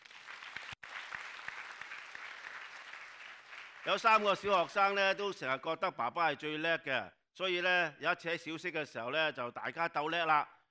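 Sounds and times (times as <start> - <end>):
crowd applauding: 0.0 - 4.9
speech: 3.8 - 10.6.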